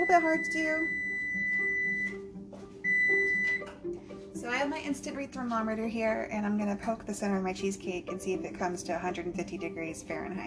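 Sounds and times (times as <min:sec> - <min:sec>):
speech: 0:00.0 - 0:01.0, 0:03.8 - 0:10.4
kitchen timer beeping for a baking cheesecake: 0:00.0 - 0:02.2, 0:02.9 - 0:03.7.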